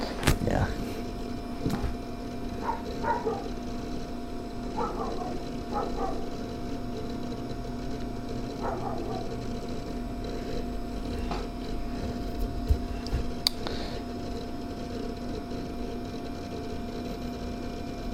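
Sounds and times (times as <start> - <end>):
steady low hum: 0.0 - 18.1
dog barking outside: 2.6 - 3.6, 4.7 - 6.4, 8.5 - 9.5.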